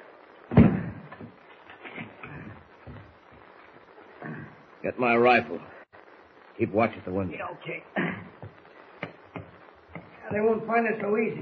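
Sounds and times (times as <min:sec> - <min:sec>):
heavy thud of shack door in the woods: 0:00.5 - 0:01.3
speech: 0:04.9 - 0:05.8, 0:06.6 - 0:08.1, 0:10.3 - 0:11.4.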